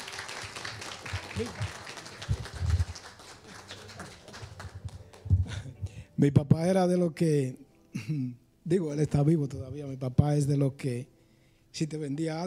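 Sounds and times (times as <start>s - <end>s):
crowd applauding: 0.0s - 5.7s
speech: 1.4s - 1.8s, 6.2s - 12.4s.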